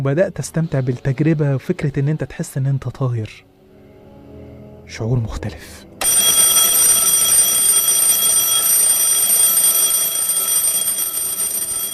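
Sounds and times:
speech: 0:00.0 - 0:03.5, 0:04.9 - 0:05.9
alarm clock bell ringing: 0:06.0 - 0:11.9.

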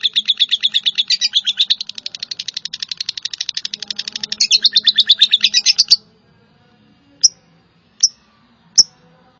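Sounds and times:
Java sparrow chipping song: 0:00.0 - 0:06.1, 0:08.0 - 0:09.0.

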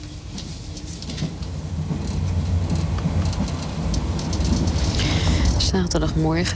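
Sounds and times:
light rail clatter: 0:00.0 - 0:06.5
passenger train pulling out of a station in Paris: 0:00.0 - 0:06.5
speech: 0:05.7 - 0:06.5.

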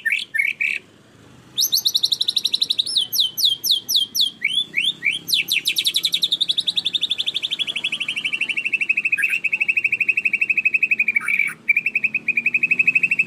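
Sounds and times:
canary song with buzzy bursts, chirps and rolling trill: 0:00.0 - 0:13.2.

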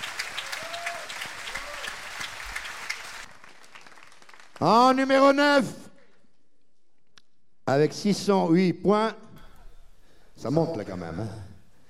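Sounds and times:
audience applause at the final of a tribute evening: 0:00.0 - 0:04.8
speech: 0:04.6 - 0:05.8, 0:07.7 - 0:09.2, 0:10.4 - 0:11.5.

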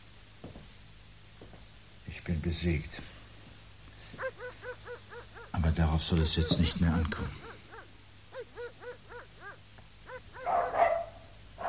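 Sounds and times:
speech: 0:02.2 - 0:03.1, 0:05.6 - 0:07.6
dogs barking: 0:04.0 - 0:11.6.

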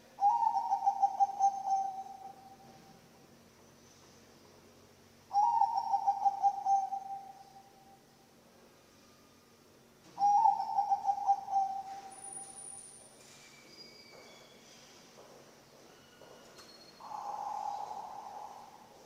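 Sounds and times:
Bangkok-type zebra dove cooing song: 0:00.0 - 0:03.0, 0:05.3 - 0:08.1, 0:10.2 - 0:12.9, 0:17.0 - 0:19.0
faint high whistles: 0:11.4 - 0:14.8, 0:15.9 - 0:18.9.

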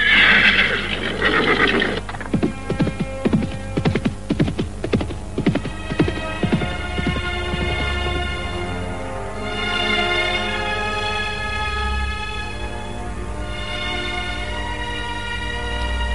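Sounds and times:
black horse whinnying: 0:00.0 - 0:02.3
black horse hooves galloping: 0:00.0 - 0:08.8
steady sustained musical drone: 0:00.0 - 0:16.1.

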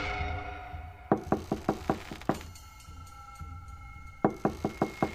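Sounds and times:
man knocking hard with his hand on a closed door of a rented room: 0:01.2 - 0:02.5, 0:04.3 - 0:05.1.

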